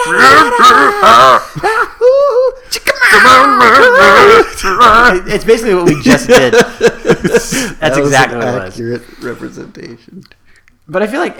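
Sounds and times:
laughter: 0.0s - 2.6s, 3.7s - 8.0s
two voices wailing and screaming in a sing-song way mimicking a song: 0.0s - 5.4s
speech: 0.1s - 2.1s, 2.7s - 11.3s.

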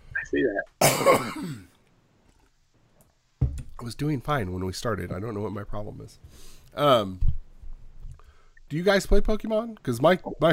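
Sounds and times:
speech: 0.2s - 1.7s, 3.8s - 7.4s, 8.7s - 10.5s
person on a video call coughing: 0.8s - 1.8s.

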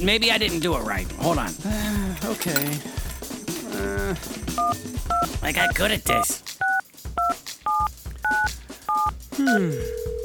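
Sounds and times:
speech: 0.0s - 3.0s, 3.8s - 6.6s, 9.4s - 10.1s
telephone keypad dialing tones: 6.6s - 10.2s.

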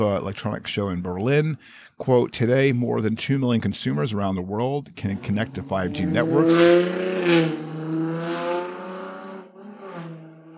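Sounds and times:
speech: 0.0s - 7.7s
loud car passing by: 5.8s - 10.5s.

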